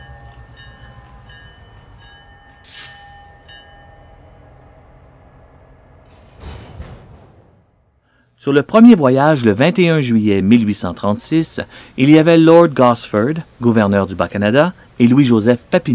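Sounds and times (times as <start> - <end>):
early train on wooden rails with metal strips entering a station: 0.0 - 8.2
speech: 8.4 - 15.9.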